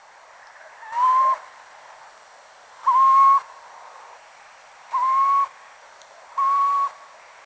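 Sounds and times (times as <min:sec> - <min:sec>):
faint steady hiss: 0:00.0 - 0:07.4
little owl Athene noctua calls: 0:00.6 - 0:01.5, 0:04.9 - 0:05.6, 0:06.4 - 0:07.0.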